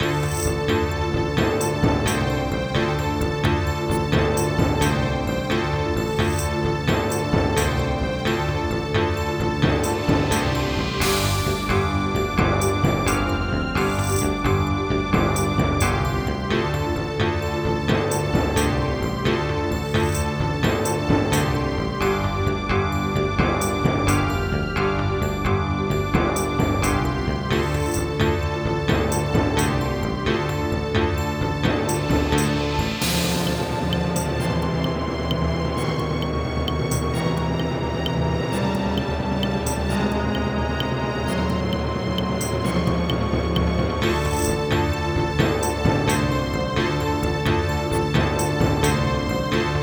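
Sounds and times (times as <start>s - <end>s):
MIDI music: 0.0s - 49.8s.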